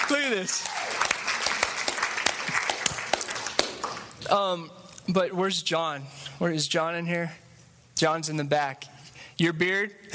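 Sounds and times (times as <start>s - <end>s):
church audience applauding: 0.0s - 4.2s
speech: 0.1s - 1.0s, 4.3s - 7.4s, 8.0s - 10.1s.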